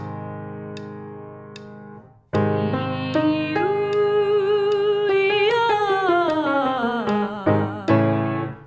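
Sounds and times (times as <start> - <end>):
low octave arpeggio with turn and descending scale vocal warmup: 2.4 - 8.4.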